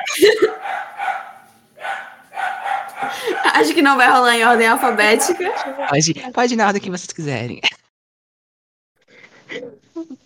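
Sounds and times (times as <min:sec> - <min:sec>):
laughter: 0:00.0 - 0:01.0, 0:02.9 - 0:05.8
female pet dogs barking and yipping: 0:00.0 - 0:06.0
speech: 0:00.1 - 0:01.2, 0:03.1 - 0:07.8.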